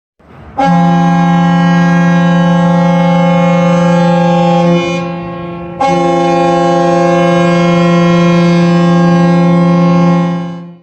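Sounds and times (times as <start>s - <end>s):
foghorns: 0.5s - 10.8s.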